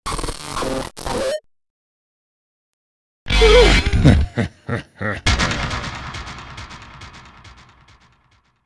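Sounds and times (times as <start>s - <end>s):
dark reveal laugh: 3.3s - 5.9s.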